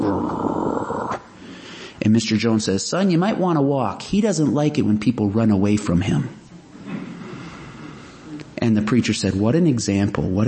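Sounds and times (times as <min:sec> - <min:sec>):
person imitating a dog's low rumbling growl: 0:00.0 - 0:01.3
speech: 0:02.1 - 0:06.4, 0:08.9 - 0:10.4.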